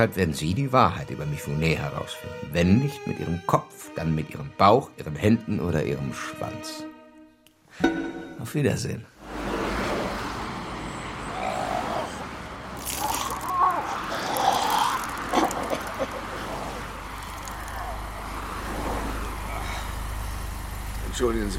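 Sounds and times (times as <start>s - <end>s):
speech: 0.0s - 6.9s, 7.8s - 9.1s
road noise: 8.5s - 21.5s
chauffeur-driven car engine rumble: 9.2s - 21.5s.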